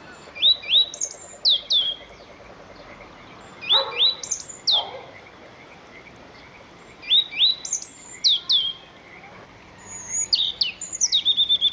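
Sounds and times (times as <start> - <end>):
European robin singing: 0.0 - 11.7.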